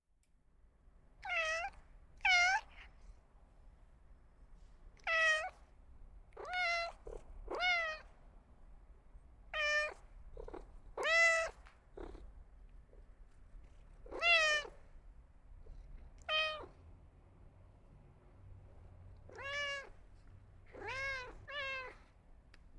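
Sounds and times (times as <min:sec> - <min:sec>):
cat meowing for attention: 0:01.2 - 0:02.9, 0:05.0 - 0:05.6, 0:06.4 - 0:08.1, 0:09.6 - 0:10.1, 0:11.0 - 0:11.7, 0:14.0 - 0:14.8, 0:16.2 - 0:16.8, 0:19.3 - 0:20.0, 0:20.7 - 0:22.1.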